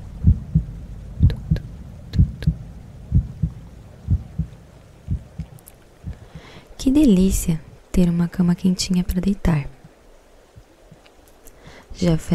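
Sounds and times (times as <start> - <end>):
heartbeat thumping in lub-dub pairs: 0.0 - 6.5
faint hiss: 0.0 - 12.3
speech: 6.8 - 9.7, 12.0 - 12.3.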